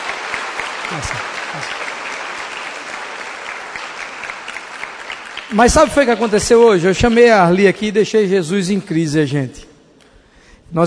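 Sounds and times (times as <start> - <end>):
crowd applauding: 0.0 - 6.8
speech: 0.9 - 2.0, 5.5 - 9.7.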